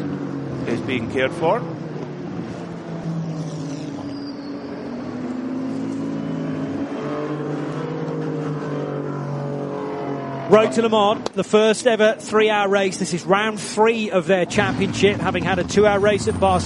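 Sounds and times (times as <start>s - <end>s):
race car engines roaring through a curve at Le Mans during a championship race: 0.0s - 16.6s
speech: 0.7s - 1.8s, 10.5s - 16.6s.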